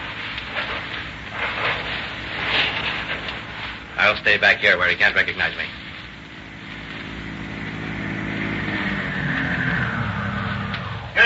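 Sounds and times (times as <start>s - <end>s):
automobile engine starting off from a ranch and approaching: 0.0s - 11.2s
speech: 4.0s - 5.8s.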